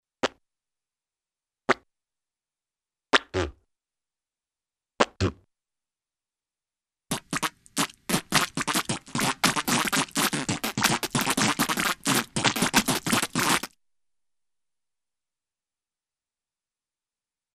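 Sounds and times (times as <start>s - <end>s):
cartoon spitting of tobacco or watermelon seed: 7.1s - 13.7s.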